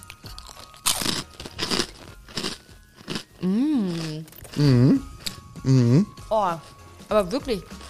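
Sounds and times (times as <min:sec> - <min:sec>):
crackly chewing of a speculoos-flavored cookie: 0:00.0 - 0:05.4
crunchy bite into a speculoos-flavored cookie: 0:00.0 - 0:05.4
speech: 0:03.4 - 0:07.8.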